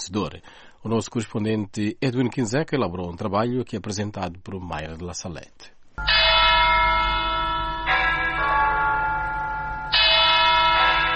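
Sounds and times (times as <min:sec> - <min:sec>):
speech: 0:00.1 - 0:06.2
cathedral church bells ringing in a peal: 0:06.0 - 0:11.1.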